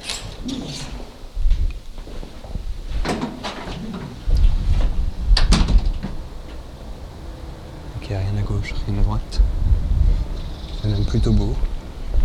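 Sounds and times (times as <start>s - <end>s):
building door scraping: 0.0s - 1.4s, 2.9s - 6.8s
faint outdoor ambience: 0.0s - 12.2s
heavy apartment building door pushed open with clunk, creak and rumble: 3.0s - 6.4s
speech: 8.2s - 9.5s, 10.8s - 11.7s.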